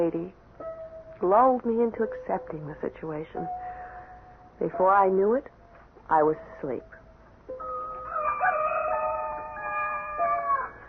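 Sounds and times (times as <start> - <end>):
speech: 0.0 - 0.4, 1.2 - 3.8, 4.6 - 7.7
faint hiss: 0.0 - 8.1
rooster crowing: 7.6 - 10.8.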